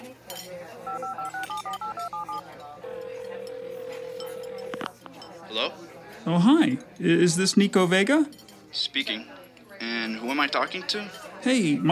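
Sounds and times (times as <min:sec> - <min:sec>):
faint clinking: 0:00.3 - 0:05.4
long unbroken phone tone: 0:00.9 - 0:04.9
telephone keypad dual-tone beeps dialing a phone number: 0:00.9 - 0:04.9
speech: 0:05.5 - 0:11.9.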